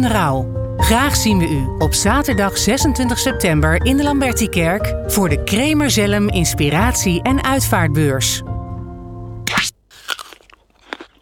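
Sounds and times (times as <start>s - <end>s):
speech: 0.0s - 8.5s
soft crunching chews of an apple: 9.5s - 11.2s
teeth biting into an apple: 9.5s - 11.2s.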